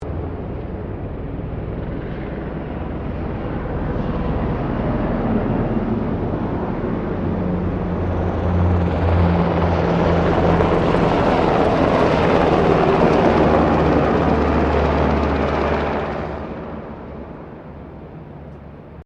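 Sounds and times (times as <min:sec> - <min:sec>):
2007 AS-350BA Squirrel helicopter passing: 0:00.0 - 0:19.0.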